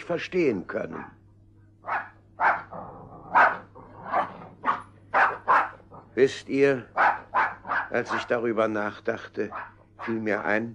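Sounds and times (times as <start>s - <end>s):
faint low hum: 0.0s - 10.7s
speech: 0.1s - 1.2s, 6.2s - 7.0s, 7.9s - 10.7s
dog barking: 0.9s - 1.2s, 1.8s - 2.7s, 3.3s - 5.9s, 6.9s - 8.4s, 9.5s - 10.5s.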